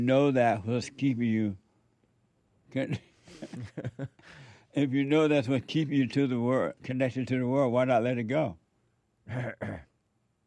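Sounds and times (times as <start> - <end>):
speech: 0.0 - 1.6, 2.7 - 8.6, 9.3 - 9.9
throat clearing: 9.3 - 10.0.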